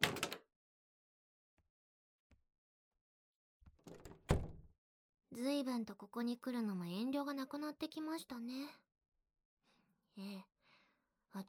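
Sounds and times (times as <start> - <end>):
door opening as someone enters a room: 0.0 - 0.4, 3.8 - 4.7
door latch clicks: 3.8 - 4.6
speech: 5.4 - 8.8, 10.2 - 10.5.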